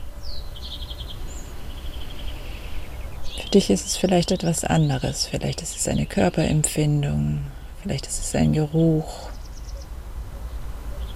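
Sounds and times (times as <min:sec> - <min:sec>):
small birds chirping and trilling outdoors on a terrace: 0:00.0 - 0:11.1
steady low outdoor rumble: 0:00.0 - 0:11.1
speech: 0:03.5 - 0:09.3.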